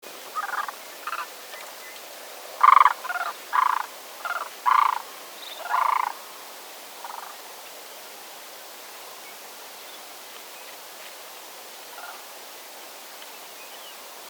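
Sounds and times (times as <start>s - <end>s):
Sandhill crane Antigone canadensis: 0.2s - 7.5s, 11.8s - 12.5s.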